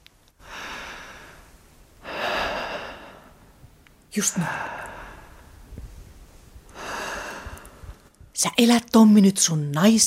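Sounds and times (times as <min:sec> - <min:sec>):
deep breathing: 0:00.4 - 0:03.7, 0:04.3 - 0:08.1
speech: 0:04.2 - 0:04.8, 0:08.4 - 0:10.0.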